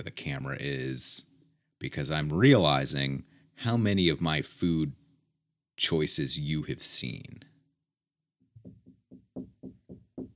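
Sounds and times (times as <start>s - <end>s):
speech: 0.0s - 5.0s, 5.8s - 7.5s
knocking on a door: 8.6s - 10.3s.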